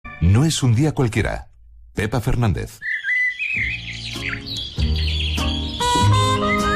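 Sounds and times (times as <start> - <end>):
speech: 0.2 - 3.0
small birds chirping and trilling: 2.6 - 6.7.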